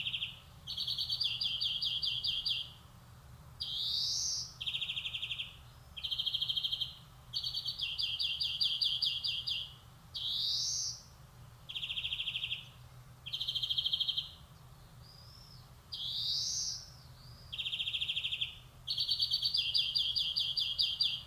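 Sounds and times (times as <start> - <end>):
European greenfinch Chloris chloris song with chattering trills and buzzy wheezes: 0.0 - 21.2.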